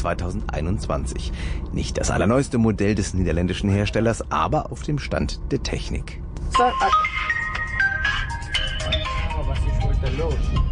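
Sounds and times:
speech: 0.0s - 7.4s, 10.0s - 10.7s
phone ringtone melody: 6.6s - 10.7s.

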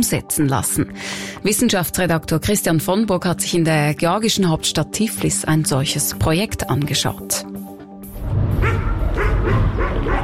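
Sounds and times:
speech: 0.0s - 7.7s
stray dogs barking in a suburb of Tbilisi Georgia: 8.6s - 10.2s.

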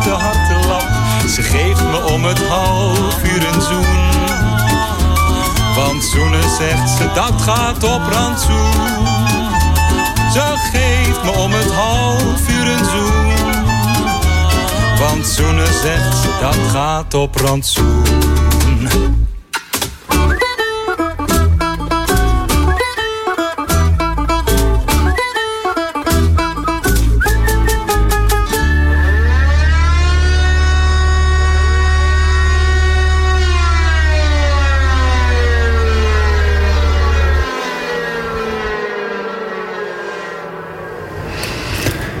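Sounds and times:
civil defense warning siren test: 0.0s - 16.6s, 25.0s - 41.8s
low steady drone: 0.0s - 16.8s, 28.5s - 42.1s
cheerful song: 0.0s - 38.7s
speech: 6.0s - 9.4s, 10.3s - 13.5s, 15.0s - 19.3s.

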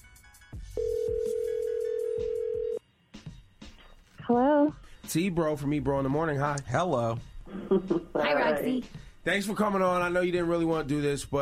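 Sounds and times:
electronic ringback tone of an outgoing telephone call: 0.8s - 2.8s
speech: 4.3s - 11.4s.

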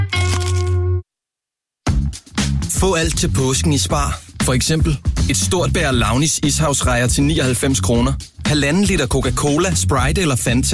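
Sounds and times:
crunchy bite into a crispy chicken burger: 0.1s - 0.8s
speech: 2.8s - 10.7s.

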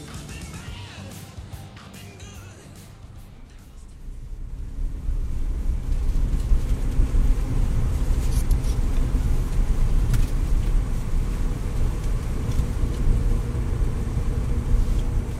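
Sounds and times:
bus tires rolling on asphalt: 3.1s - 15.3s.

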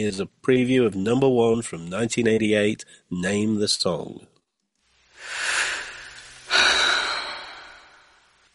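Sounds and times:
speech: 0.0s - 4.3s
breathing from a rock song: 2.8s - 3.1s, 5.2s - 8.4s.

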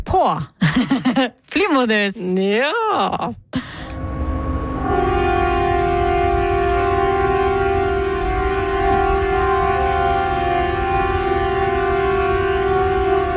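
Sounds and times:
speech: 0.1s - 3.8s
laughter: 0.6s - 1.4s
civil defence sirens being tested in Bodø city centre: 3.8s - 13.3s
church bells: 4.0s - 13.3s.

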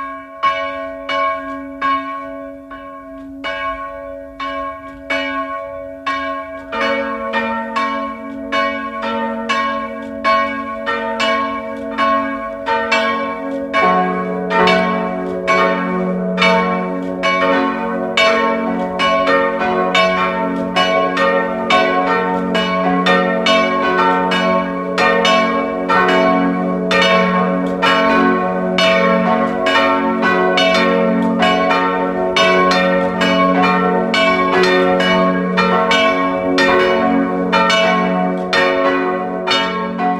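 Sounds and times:
church bells ringing in a continuous peal: 0.0s - 40.1s.

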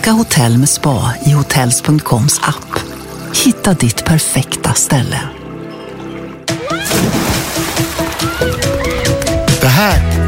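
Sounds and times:
speech: 0.0s - 5.5s, 9.8s - 10.1s
churning sloshing pool water with bubbly warbling tones: 0.0s - 9.2s
splash of someone plunging into a pool: 6.7s - 8.9s.

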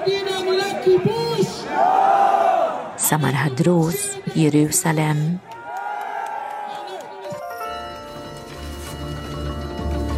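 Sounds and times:
speech: 0.0s - 1.9s, 3.1s - 5.6s
large crowd shouting back in unison: 0.0s - 3.1s, 5.5s - 7.2s
crowd cheering: 0.0s - 3.6s, 5.2s - 7.6s.

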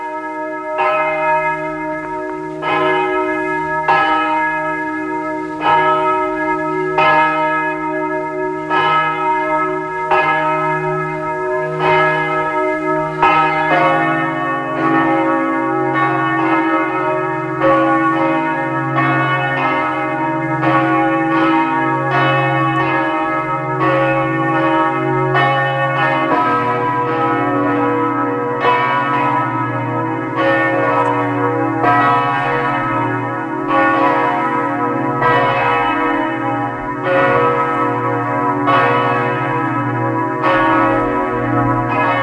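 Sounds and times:
several parish church bells pealing at noon: 0.0s - 42.2s.

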